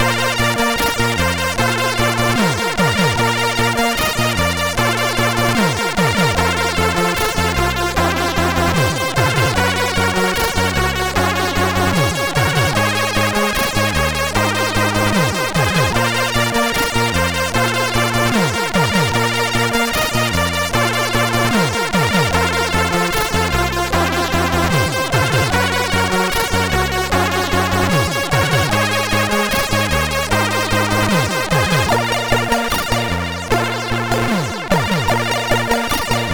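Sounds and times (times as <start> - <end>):
fast music on a MOS6581R4 sound chip: 0.0 - 36.3.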